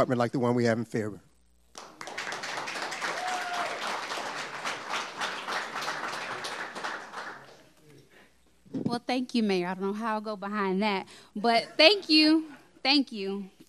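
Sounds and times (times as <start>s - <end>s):
speech: 0.0s - 1.3s, 8.9s - 13.6s
crowd applauding: 1.7s - 7.8s
faint whistle or cheer: 3.0s - 3.9s.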